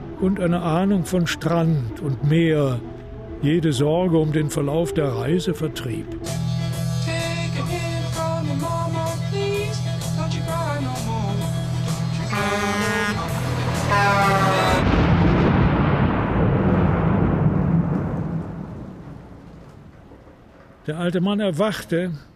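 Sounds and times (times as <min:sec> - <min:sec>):
layered musical tones and sustained chords: 0:00.0 - 0:15.0
speech: 0:00.2 - 0:06.4, 0:20.9 - 0:22.3
thunderclap from a storm: 0:13.1 - 0:21.0.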